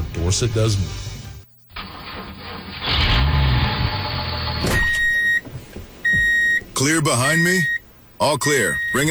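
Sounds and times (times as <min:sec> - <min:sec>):
speech: 0:00.3 - 0:01.1, 0:06.8 - 0:09.0
heavy diesel engine starting up and rumbling: 0:02.8 - 0:09.0.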